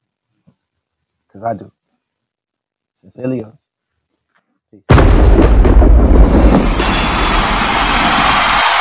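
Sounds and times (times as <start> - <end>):
speech: 1.4 - 1.8, 3.0 - 3.6, 4.7 - 5.6
bomb explosion sound effect: 4.9 - 8.7.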